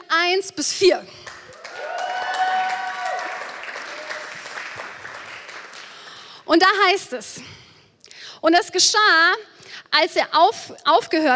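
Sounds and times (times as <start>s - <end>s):
speech: 0.2s - 1.3s, 6.5s - 7.6s, 8.4s - 11.3s
crowd applauding: 1.2s - 6.2s.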